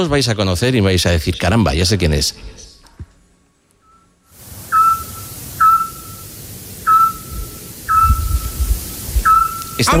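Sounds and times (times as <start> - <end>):
speech: 0.0 - 2.6, 9.8 - 9.9
steady hiss of night noise: 0.0 - 9.9
Eurasian scops owl giving whistled hoots: 4.6 - 9.9.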